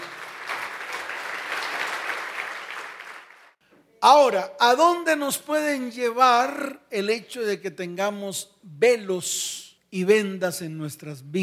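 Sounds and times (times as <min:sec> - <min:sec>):
audience clapping in a room: 0:00.0 - 0:03.6
speech: 0:04.0 - 0:11.4.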